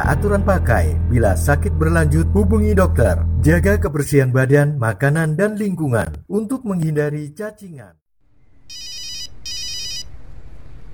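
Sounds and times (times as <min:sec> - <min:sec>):
speech: 0:00.0 - 0:08.0
telephone ringing with a high bright electronic ringtone: 0:08.7 - 0:10.1.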